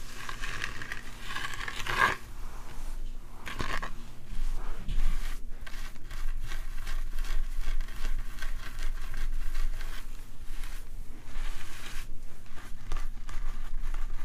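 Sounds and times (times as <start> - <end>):
dry scratching and rubbing at the scalp and hair: 0.0 - 14.2
faint low hum: 0.0 - 14.2
hair brushing: 0.0 - 14.2.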